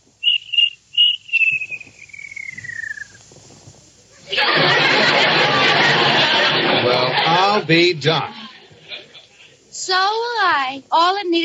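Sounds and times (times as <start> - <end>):
high whistle-like cartoon cricket chirps: 0.0 - 3.7
loud rush of steady hissing noise: 0.0 - 10.8
long falling whistle: 0.2 - 3.2
laughter: 4.2 - 9.6
speech: 7.3 - 8.4, 10.5 - 11.4.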